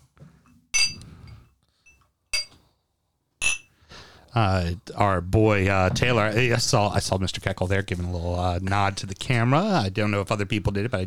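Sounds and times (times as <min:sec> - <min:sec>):
whiskey glasses clinking in a toast: 0:00.7 - 0:02.6, 0:03.4 - 0:03.7
speech: 0:04.4 - 0:11.0.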